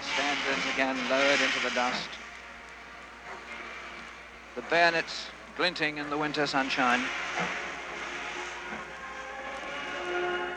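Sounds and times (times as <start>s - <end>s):
funeral train slowly pulling out of a station in winter sunshine: 0.0s - 10.5s
train wheels or brakes squealing: 0.0s - 10.5s
speech: 0.5s - 2.2s, 4.6s - 7.6s.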